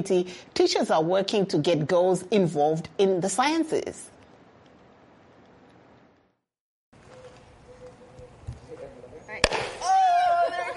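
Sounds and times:
speech: 0.0s - 4.1s
tablet-and-water rocket experiment blasting off with a pop: 9.4s - 9.8s
louder excited voices: 9.8s - 10.7s.

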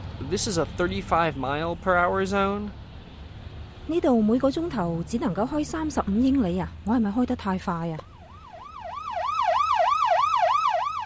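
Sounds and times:
low rumble of traffic: 0.0s - 11.0s
speech: 0.2s - 2.8s, 3.9s - 8.1s
police car siren wailing in a fast up-and-down yelp: 8.0s - 11.0s.

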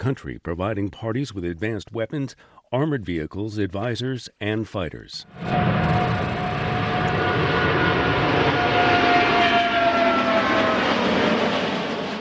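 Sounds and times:
speech: 0.0s - 6.1s
large twin-engine jetliner roaring past: 5.2s - 12.1s
thin engine whine of a twin-engine jetliner: 5.2s - 12.1s.

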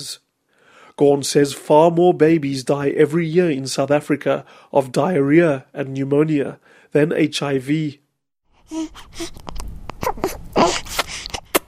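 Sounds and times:
speech: 0.0s - 0.3s, 1.0s - 8.0s, 8.7s - 9.7s
newborn baby whimpering while breastfeeding: 8.6s - 11.6s.

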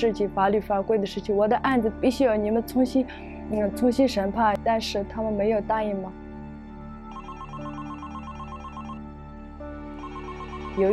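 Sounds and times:
speech: 0.0s - 6.2s, 10.8s - 10.9s
telephone ringing with a warbling electronic trill: 7.1s - 9.1s, 10.0s - 10.9s.

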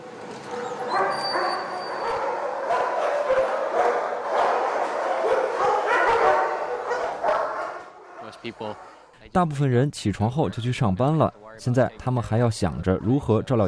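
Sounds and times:
many excited dogs barking and yipping in a kennel: 0.4s - 9.0s
speech: 8.5s - 13.6s.

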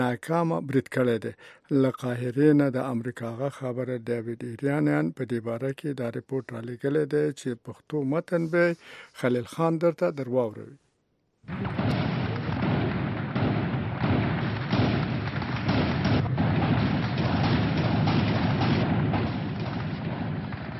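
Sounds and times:
speech: 0.0s - 10.8s, 11.4s - 12.0s
gunfire from fighters attacking government buildings in Ramadi, Anbar province: 11.5s - 20.7s.

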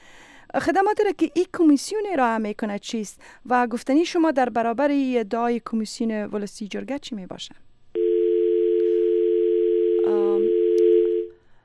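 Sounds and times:
speech: 0.5s - 7.6s
telephone dial tone after call disconnects: 8.0s - 11.4s.

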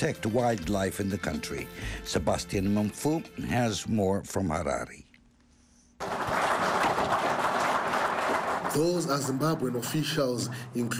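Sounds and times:
speech: 0.0s - 5.0s, 8.7s - 10.9s
officials clapping after receiving equipment: 6.0s - 10.2s.

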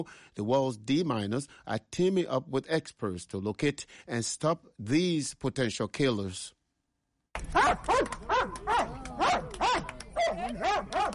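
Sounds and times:
speech: 0.0s - 6.6s, 7.4s - 8.8s
Belgian Malinois mine detection dog barking: 7.5s - 11.1s.

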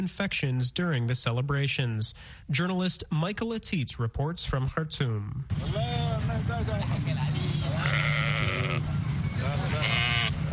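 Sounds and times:
speech: 0.0s - 10.1s
constant low rumble of traffic: 4.9s - 10.5s
murmuring crowd noise at a livestock market: 5.7s - 10.5s
hundreds of sheep bleating at a livestock market in Khartoum Sudan: 7.6s - 8.9s, 9.6s - 10.5s.

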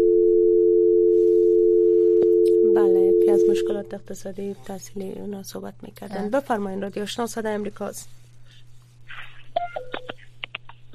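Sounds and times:
continuous telephone dial tone after a call is cut off: 0.0s - 3.7s
speech: 3.4s - 8.2s.

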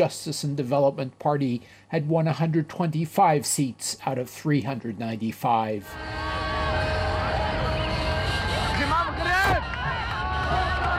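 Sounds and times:
speech: 0.0s - 6.4s
car horns honking: 5.9s - 9.6s
dense noisy street crowd cheering and clapping: 5.9s - 10.9s
people shouting: 5.9s - 10.9s.

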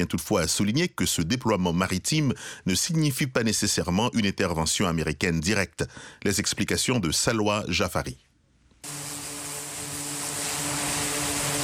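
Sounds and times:
speech: 0.0s - 8.3s
aircraft engine roar over an aircraft carrier: 8.9s - 11.6s.

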